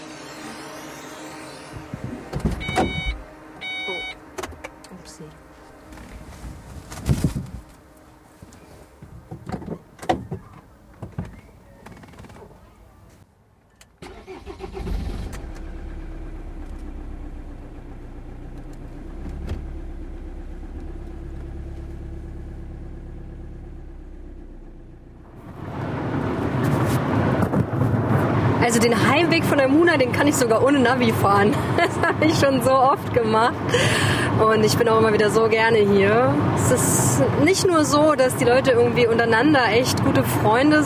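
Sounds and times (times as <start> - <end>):
car engine turning over and idling: 0.0 - 13.1, 13.8 - 40.8
car doors opening and slamming: 2.3 - 3.2
footsteps: 5.5 - 9.4
birds chirping outside: 9.8 - 13.9
speech: 28.7 - 40.8
laughter: 31.5 - 32.4.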